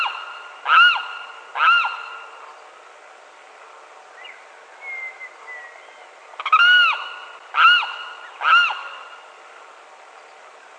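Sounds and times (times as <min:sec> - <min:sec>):
limpkin Aramus guarauna wailing calls: 0:00.0 - 0:02.3, 0:06.4 - 0:09.1.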